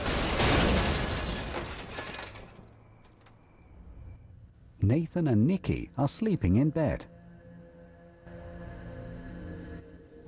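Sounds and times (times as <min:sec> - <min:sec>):
car slamming into something solid: 0:00.0 - 0:03.6
glass shattering: 0:00.0 - 0:03.6
scattering debris rattling: 0:00.0 - 0:03.7
speech: 0:04.9 - 0:07.2.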